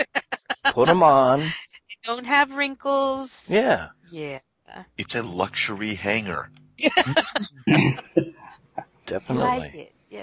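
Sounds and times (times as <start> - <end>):
laughter: 0.0 - 1.5, 3.5 - 3.8, 5.0 - 9.8
speech: 0.7 - 8.4, 9.1 - 10.2
person coughing: 6.9 - 8.5, 9.3 - 9.7.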